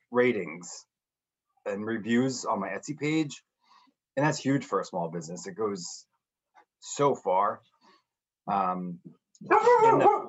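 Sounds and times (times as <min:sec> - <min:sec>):
speech: 0:00.1 - 0:00.9, 0:01.6 - 0:03.5, 0:04.2 - 0:06.1, 0:06.8 - 0:07.7, 0:08.5 - 0:10.2
dog giving drawn-out barks or yowls: 0:09.5 - 0:10.2.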